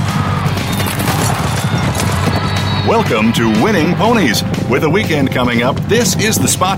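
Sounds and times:
racehorses galloping out of the starting gate: 0:00.2 - 0:03.4
speech: 0:02.9 - 0:06.7.

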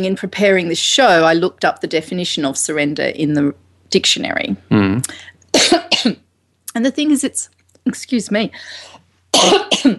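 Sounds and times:
speech: 0:00.0 - 0:06.2, 0:06.8 - 0:09.9
phlegmy human cough: 0:05.6 - 0:06.2, 0:09.4 - 0:09.9.

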